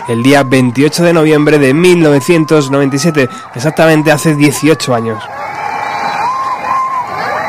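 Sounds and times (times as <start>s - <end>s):
speech: 0.0s - 5.5s
large concert crowd shouting and cheering for an encore: 0.0s - 7.4s
whoops from concert crowd: 1.9s - 7.4s.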